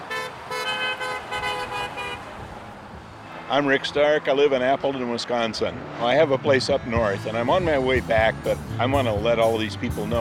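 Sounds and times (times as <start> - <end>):
car horns honking: 0.0 - 2.6
steady hum of road traffic: 0.0 - 10.1
speech: 3.5 - 10.1.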